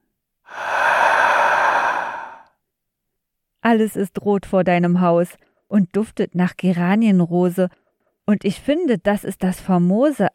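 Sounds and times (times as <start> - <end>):
deep breath in and out during a slow breathing exercise: 0.5 - 2.6
speech: 3.7 - 10.3.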